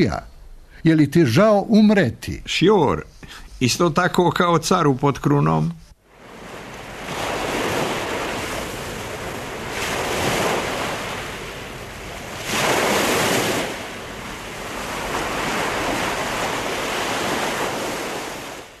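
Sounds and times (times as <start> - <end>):
speech: 0.0 - 5.8
rough sea waves surging and crashing: 6.0 - 18.7.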